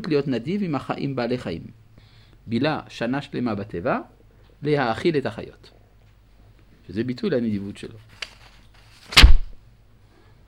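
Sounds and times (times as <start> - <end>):
speech: 0.0 - 1.8, 2.4 - 5.8, 6.9 - 8.2
heavy door slamming shut: 9.2 - 9.6.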